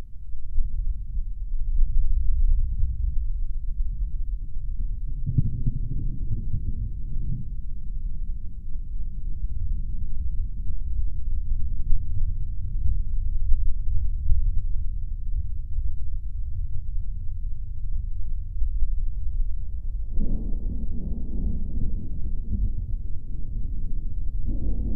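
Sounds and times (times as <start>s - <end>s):
low deep thunder rumble: 0.6s - 24.9s.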